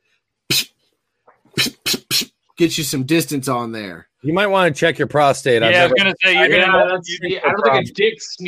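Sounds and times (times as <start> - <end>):
voice imitating a water spout: 1.6 - 2.3
speech: 2.6 - 8.4.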